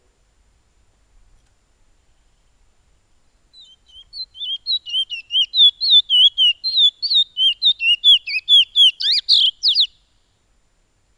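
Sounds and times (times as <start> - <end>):
piolet bird whistling song: 3.5 - 10.1.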